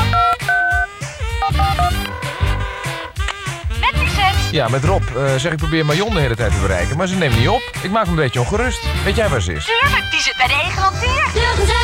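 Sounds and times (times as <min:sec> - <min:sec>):
telephone number dialled on a keypad: 0:00.0 - 0:03.4
speech: 0:04.5 - 0:11.8.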